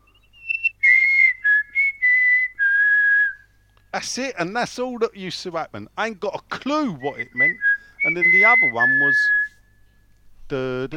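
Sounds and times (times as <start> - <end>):
person whistling a call: 0.0 - 3.4, 7.0 - 9.6
speech: 3.9 - 9.4, 10.5 - 10.9.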